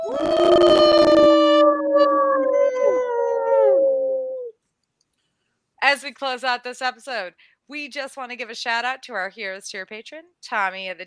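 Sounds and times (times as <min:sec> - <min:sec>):
several people howling like wolves: 0:00.0 - 0:04.5
speech: 0:06.1 - 0:11.0.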